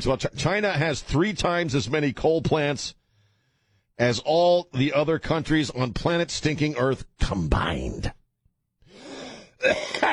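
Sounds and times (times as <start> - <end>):
speech: 0.0 - 3.0, 4.0 - 8.2, 9.6 - 10.1
raspy cough: 9.4 - 10.1.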